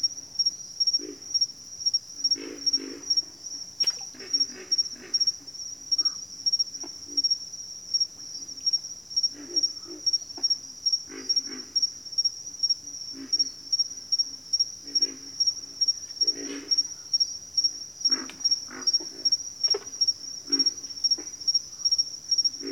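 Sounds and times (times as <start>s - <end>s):
constant high rhythmic insect chirring: 0.0s - 22.7s
pig frogs grunting in a bayou: 2.2s - 6.2s, 9.2s - 12.0s, 13.1s - 13.8s, 14.8s - 22.7s.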